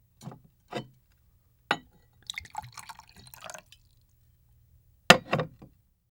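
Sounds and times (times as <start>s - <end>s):
liquid pouring down from an upturned bottle: 2.2s - 4.0s.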